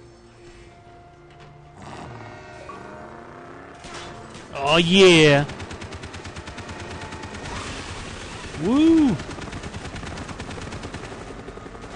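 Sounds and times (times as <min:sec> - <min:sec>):
dense continuous gunfire from a video game: 0:03.8 - 0:11.9
speech: 0:04.6 - 0:05.6.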